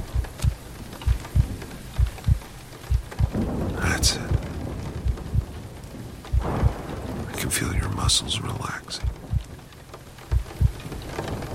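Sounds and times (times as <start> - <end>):
soft low thuds: 0.0 - 5.6, 6.3 - 7.0, 9.0 - 9.5, 10.3 - 10.8
deep thunder rumbling and booming: 0.0 - 11.5
steady rain hissing: 0.0 - 11.5
person speaking calmly and quietly: 3.8 - 4.5, 7.3 - 9.1
speech: 4.0 - 4.2, 7.6 - 9.2.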